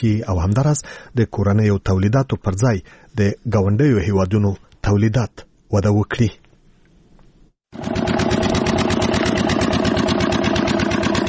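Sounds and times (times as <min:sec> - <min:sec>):
speech: 0:00.0 - 0:06.4
generator powering a pipe-making factory in an industrial park in Kandahar: 0:07.7 - 0:11.2.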